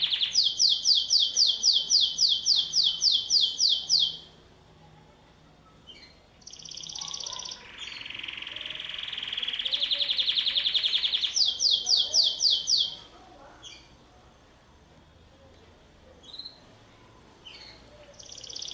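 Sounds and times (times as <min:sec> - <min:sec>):
canary singing: 0:00.0 - 0:04.4, 0:05.5 - 0:14.0, 0:16.2 - 0:16.8, 0:17.4 - 0:18.7.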